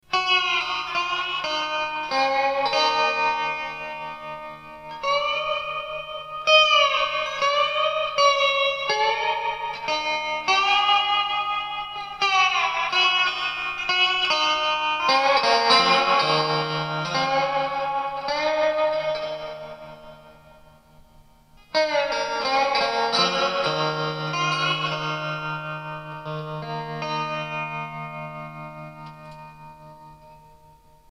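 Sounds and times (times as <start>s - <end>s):
tin guitar with effects: 0.0s - 31.0s.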